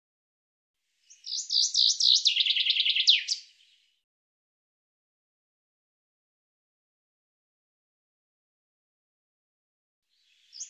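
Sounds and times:
bird trilling song: 1.1s - 3.9s, 10.2s - 10.6s.

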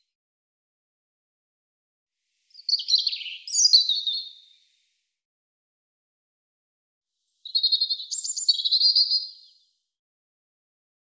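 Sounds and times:
European robin song: 2.5s - 4.7s, 7.4s - 9.7s.

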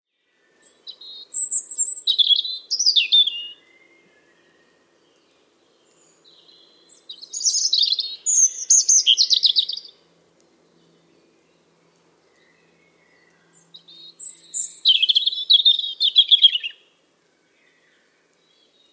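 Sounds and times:
bird warbling song: 0.2s - 18.9s.

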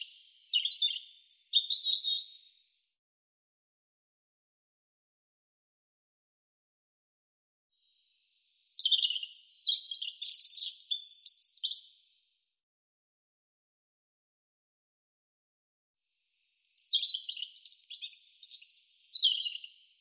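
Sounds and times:
European robin singing: 0.0s - 2.6s, 8.0s - 12.2s, 16.4s - 19.9s.

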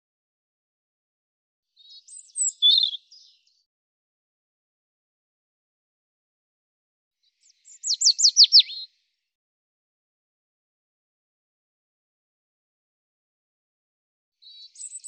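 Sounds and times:
European robin singing: 1.8s - 3.6s, 7.3s - 8.9s, 14.4s - 15.0s.

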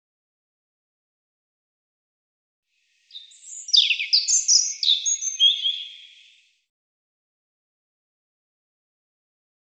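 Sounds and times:
European robin song: 2.9s - 6.6s.

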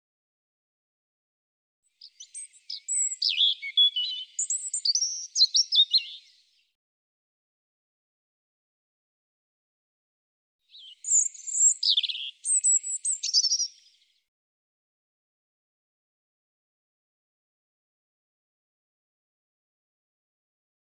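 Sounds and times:
European robin singing: 1.9s - 6.6s, 10.7s - 14.2s.

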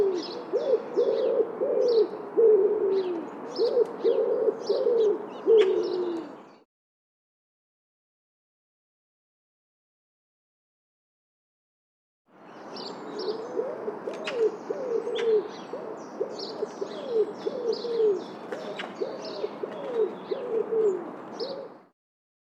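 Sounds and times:
bird giving low hollow cooing notes: 0.0s - 6.5s, 12.8s - 21.9s.

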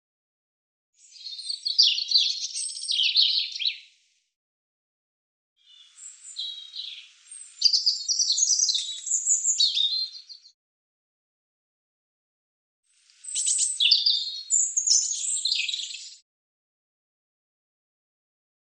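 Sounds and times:
European robin singing: 1.0s - 4.0s, 5.6s - 10.6s, 13.1s - 16.2s.

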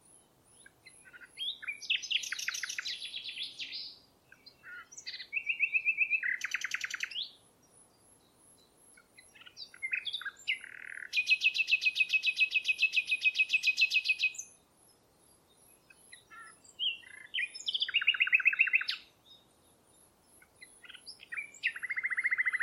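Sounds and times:
bird giving high chirps: 0.0s - 22.6s.

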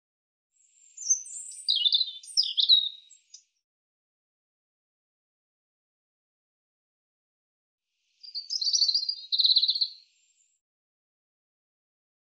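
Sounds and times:
European robin singing: 0.6s - 3.6s, 8.2s - 10.6s.

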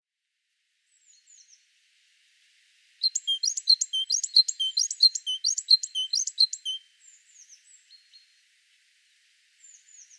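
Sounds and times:
great tit song: 3.0s - 6.8s.

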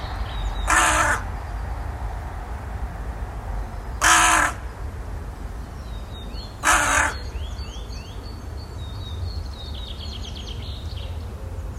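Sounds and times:
bird giving a harsh caw: 0.0s - 1.5s, 3.9s - 4.9s, 6.4s - 8.2s
faint high chirping from other birds: 0.0s - 11.7s
low background rumble: 0.0s - 11.7s.

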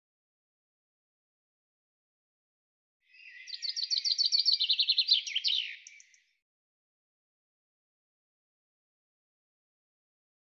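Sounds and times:
bird song: 3.0s - 6.5s.

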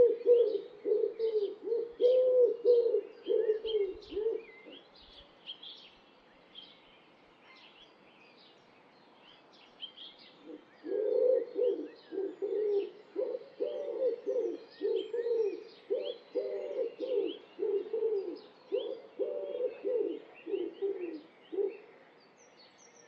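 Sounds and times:
bird cooing: 0.0s - 4.8s, 10.4s - 21.9s
faint bird chirping: 0.0s - 23.0s.

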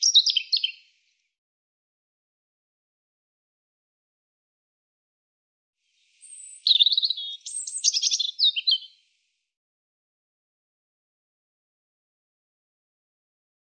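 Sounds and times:
European robin singing with twittering phrases, sweet whistles and rapid trills: 0.0s - 0.9s, 6.1s - 9.0s.

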